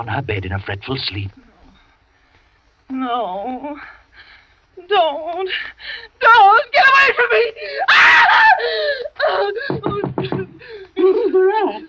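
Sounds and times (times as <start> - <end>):
speech: 0.0 - 1.4, 3.0 - 11.8
woman screaming and wailing in distress: 6.2 - 11.8.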